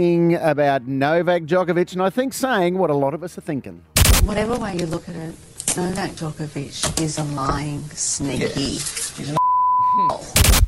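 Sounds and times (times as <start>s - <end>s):
speech: 0.0s - 9.4s
censor beep bleeping out an insult: 9.4s - 10.2s.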